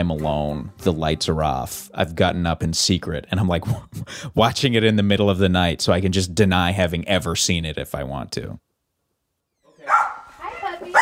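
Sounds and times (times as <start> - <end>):
speech: 0.0 - 8.7
dog barking at a home overlooking a canyon: 9.8 - 11.0.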